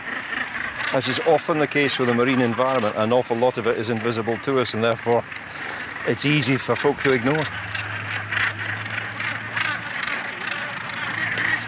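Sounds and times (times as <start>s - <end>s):
large flock of birds calling on a path: 0.0s - 11.6s
speech: 0.9s - 7.8s.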